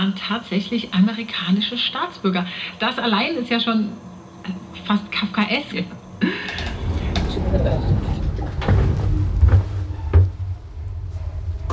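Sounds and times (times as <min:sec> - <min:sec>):
speech: 0:00.0 - 0:06.7
low rumbling background: 0:04.1 - 0:11.7
door closing with a dull thump: 0:06.5 - 0:10.5
soft knocks and rattles: 0:06.5 - 0:10.6.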